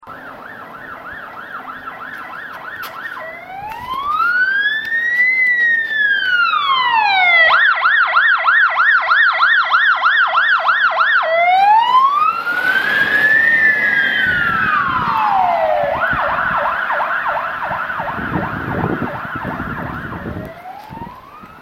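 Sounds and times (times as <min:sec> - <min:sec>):
ambulance: 0:00.0 - 0:21.6.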